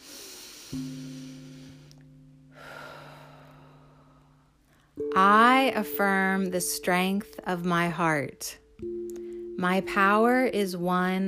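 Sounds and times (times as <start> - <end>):
slow deep breath in and out during a guided affirmation session: 0.0 - 5.0
low sustained musical drone: 0.1 - 11.2
speech: 0.7 - 1.2, 5.2 - 8.9, 9.6 - 11.2.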